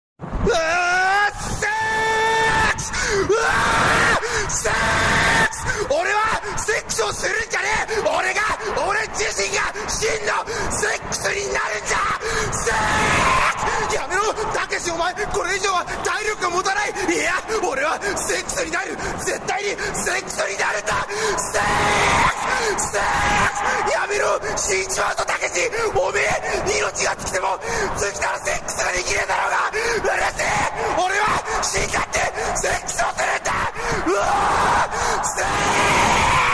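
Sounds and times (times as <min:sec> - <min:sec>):
Japanese man screaming in a tunnel: 0:00.4 - 0:10.6, 0:11.3 - 0:26.6, 0:27.4 - 0:36.5.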